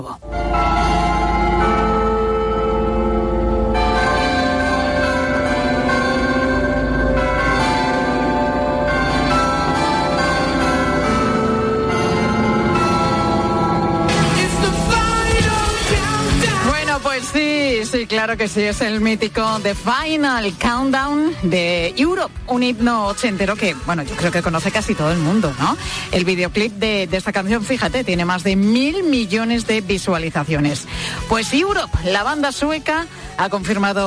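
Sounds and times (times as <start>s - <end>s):
carillon bells of the City Hall playing a 1980s pop melody: 0.2s - 19.1s
speech: 18.2s - 34.0s.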